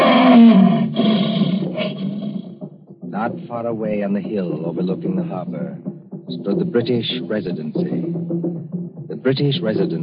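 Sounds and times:
lion roaring and growling: 0.0 - 2.6
speech: 3.2 - 8.4, 9.2 - 10.0.

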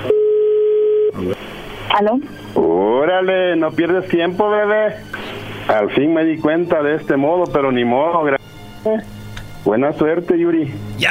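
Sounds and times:
faint telephone line noise: 0.0 - 1.2
phone ringing tone as a call is placed: 0.0 - 1.2
speech: 1.2 - 11.0.

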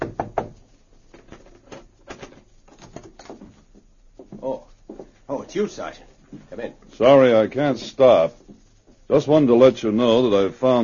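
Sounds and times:
knocking on a hotel room door: 0.0 - 0.6
speech: 5.5 - 8.4, 9.1 - 10.8.

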